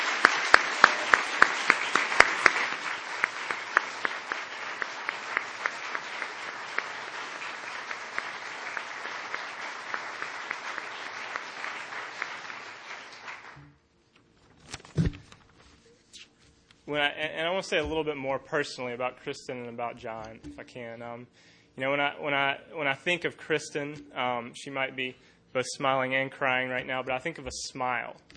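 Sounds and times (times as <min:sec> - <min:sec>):
audience applause: 0:00.0 - 0:13.6
speech: 0:16.9 - 0:28.3.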